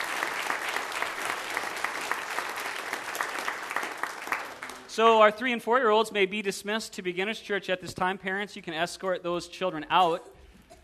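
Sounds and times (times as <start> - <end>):
audience clapping at a church service: 0.0 - 5.0
speech: 5.0 - 10.3.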